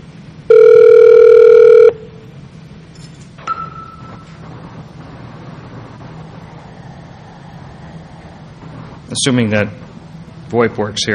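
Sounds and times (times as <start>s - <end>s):
VoIP phone call electronic ringing tone beep: 0.5s - 2.2s
speech: 9.2s - 9.8s, 10.5s - 11.1s.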